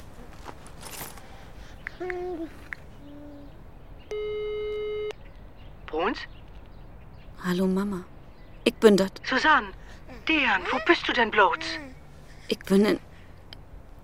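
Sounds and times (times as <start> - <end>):
speech: 2.0 - 2.6, 7.5 - 11.9, 12.5 - 13.1
short beeps: 4.1 - 5.2
telephone ringing tone through the line during a call: 4.1 - 5.2.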